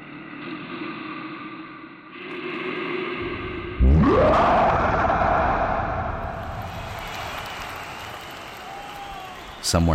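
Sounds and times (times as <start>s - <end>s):
low steady drone: 0.0s - 6.8s
bear roaring: 3.2s - 6.5s
speech: 9.7s - 9.9s.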